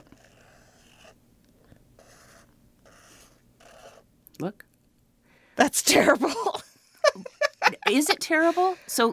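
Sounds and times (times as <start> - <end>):
pen scratching across paper drawing scissors: 0.0 - 1.2, 2.0 - 4.1
speech: 4.4 - 4.7, 5.7 - 6.7, 7.9 - 9.1.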